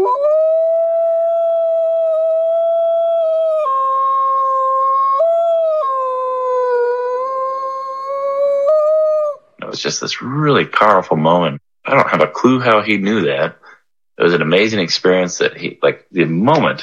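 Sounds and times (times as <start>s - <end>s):
dog howling mournfully: 0.0s - 9.4s
speech: 9.8s - 13.6s, 14.2s - 16.8s.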